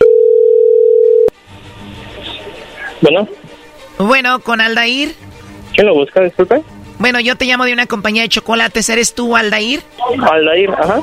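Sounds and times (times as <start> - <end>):
telephone dial tone while a call is being placed: 0.0 - 1.3
speech: 3.0 - 5.2, 5.8 - 11.0.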